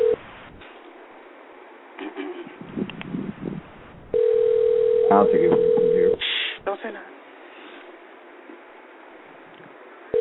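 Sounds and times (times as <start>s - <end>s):
outgoing phone call ringback tone over a phone line: 0.0s - 0.2s, 4.1s - 6.2s
speech: 5.1s - 5.8s.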